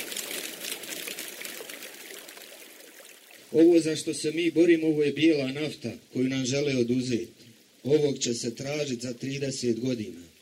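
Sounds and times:
water flowing in a mountain stream: 0.0 - 10.4
speech: 3.5 - 10.3.

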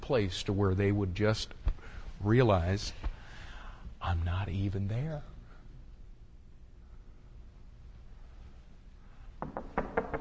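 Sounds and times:
speech: 0.1 - 1.6, 2.2 - 3.1, 4.0 - 5.3
sharp knocks on a door: 9.4 - 10.1.

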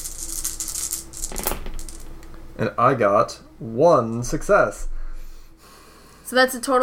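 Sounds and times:
small dice rattling across a hard tabletop: 0.0 - 2.3
speech: 2.6 - 4.9, 6.3 - 6.8.

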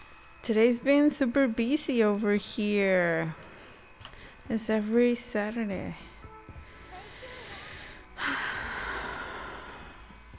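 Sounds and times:
low noise: 0.0 - 10.3
speech: 0.5 - 3.5, 4.5 - 6.1
deep breath: 6.7 - 10.2.

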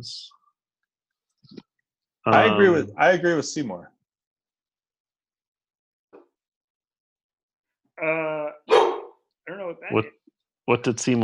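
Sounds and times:
speech: 0.0 - 0.4, 2.2 - 3.9, 8.0 - 8.9, 9.5 - 11.2
dog barking: 8.7 - 9.2.

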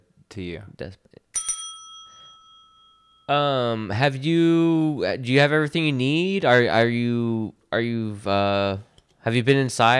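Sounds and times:
speech: 0.4 - 1.3, 3.3 - 9.9
desk bell ringing: 1.3 - 3.4.

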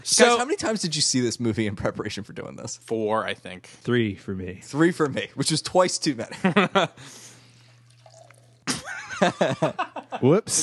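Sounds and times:
speech: 0.0 - 7.3, 9.2 - 10.6
laughter: 6.3 - 7.0, 8.7 - 10.4
beer pouring into a glass: 7.6 - 8.7.

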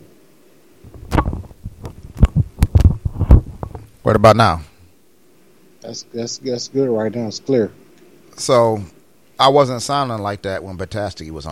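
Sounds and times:
faint hum on a call line: 0.0 - 11.5
static crackling on a call line: 0.0 - 11.5
dull low thumps on a call line: 0.9 - 4.0
speech: 4.0 - 4.7, 5.8 - 7.8, 8.4 - 11.5.

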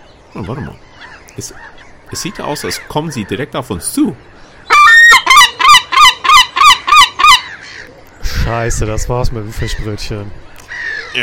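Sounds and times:
speech: 0.4 - 4.5, 8.4 - 11.2
seagull squawking: 0.4 - 8.0, 10.6 - 11.2.

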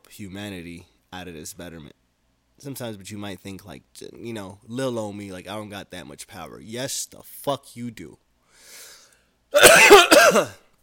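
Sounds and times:
speech: 0.2 - 2.0, 2.6 - 8.8, 9.5 - 10.6
harsh raspy cough: 9.5 - 10.7.

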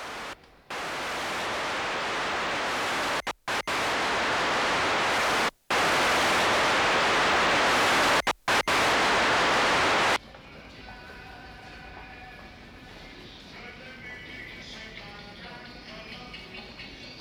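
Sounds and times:
white noise played through speakers: 0.0 - 10.2.

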